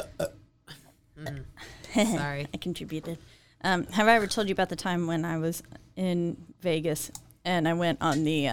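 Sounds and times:
person burping: 0.0s - 1.5s
speech: 2.0s - 8.5s.

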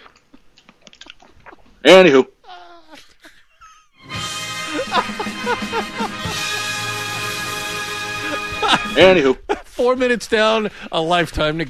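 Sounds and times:
man crunching and chewing a snack seasoned with sesame seeds: 0.0s - 1.8s
speech: 1.8s - 2.3s, 5.5s - 6.0s, 8.8s - 11.6s
laughter: 4.4s - 10.0s.

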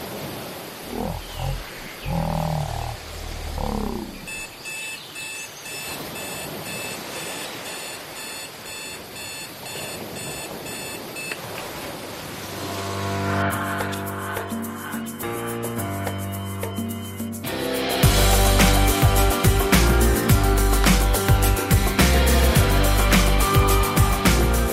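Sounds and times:
low growling roar: 0.8s - 4.5s
alarm clock beeping: 4.3s - 11.4s
music: 12.6s - 24.7s.

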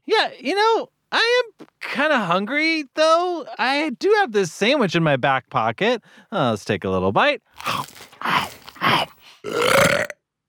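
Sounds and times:
speech: 0.2s - 10.2s
loud burp after eating a sandwich: 7.6s - 10.2s.

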